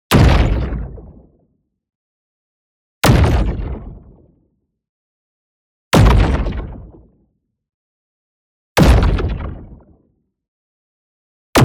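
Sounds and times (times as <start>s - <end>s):
large distorted explosion with body punch: 3.0s - 4.0s, 6.0s - 6.9s, 8.8s - 9.8s.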